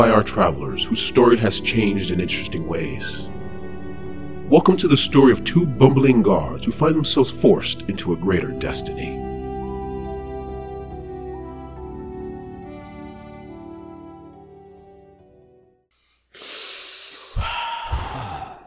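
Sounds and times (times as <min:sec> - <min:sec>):
speech: 0:00.0 - 0:03.4, 0:04.5 - 0:09.3
exaggerated heavy breathing: 0:16.0 - 0:18.6.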